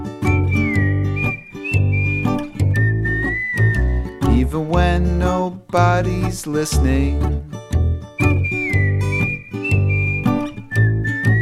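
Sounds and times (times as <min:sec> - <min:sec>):
person whistling a wavering high clear melody: 0:00.2 - 0:04.5, 0:08.2 - 0:11.4
speech: 0:04.6 - 0:07.5.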